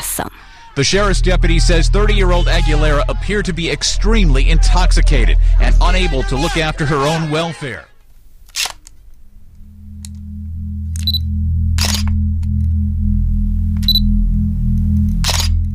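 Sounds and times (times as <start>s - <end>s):
speech: 0.2s - 7.9s
steady low electronic hum: 0.7s - 7.4s, 8.0s - 15.7s
short high beep: 11.0s - 12.0s, 13.8s - 14.1s
camera shutter clicks for police mugshot: 15.2s - 15.6s.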